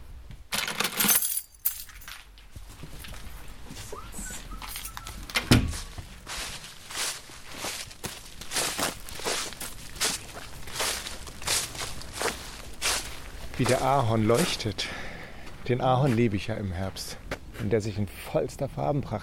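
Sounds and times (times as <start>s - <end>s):
metallic jingle of keys being picked up: 0.5s - 2.3s, 4.6s - 5.4s
small knocks and clinks of someone putting on shoes: 0.5s - 2.3s
footsteps: 1.7s - 17.8s
speech: 13.6s - 15.0s, 15.7s - 19.2s.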